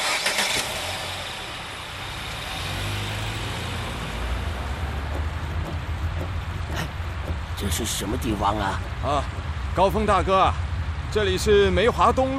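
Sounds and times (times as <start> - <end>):
car engine starting: 0.0 - 9.8
car driving off with a steady broad rumble: 0.0 - 11.0
speech: 7.6 - 12.3.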